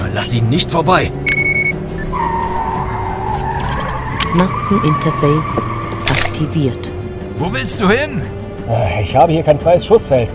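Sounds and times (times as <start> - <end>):
jeep engine roaring at speed in a car chase: 0.0 - 8.7
speech: 0.2 - 1.4, 4.3 - 5.7, 6.4 - 10.3
jeep tires squealing in a car chase: 1.8 - 6.8.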